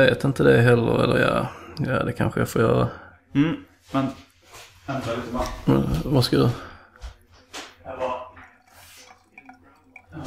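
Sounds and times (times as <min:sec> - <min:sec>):
speech: 0:00.0 - 0:04.2, 0:04.9 - 0:06.7
water splashing and trickling from a tap into a glass: 0:08.3 - 0:10.2.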